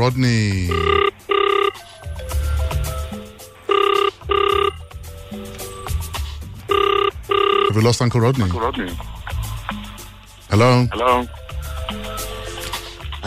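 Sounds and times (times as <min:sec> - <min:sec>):
speech: 0:00.0 - 0:01.2, 0:07.8 - 0:09.2, 0:10.5 - 0:11.4
quiet music-like tones: 0:00.2 - 0:13.2
telephone ringing on an outgoing call to a radio guest: 0:00.6 - 0:02.2, 0:03.6 - 0:05.0, 0:06.7 - 0:08.0.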